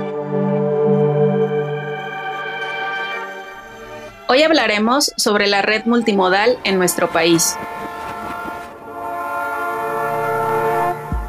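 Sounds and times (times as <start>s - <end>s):
loud sustained train horn blaring: 0.0s - 11.2s
low rumble of passing railroad cars: 3.2s - 11.2s
speech: 4.3s - 7.8s.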